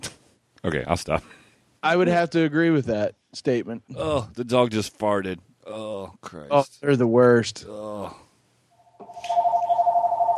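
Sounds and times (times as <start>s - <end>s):
speech: 0.6s - 8.2s
telephone ring tone: 8.8s - 10.3s.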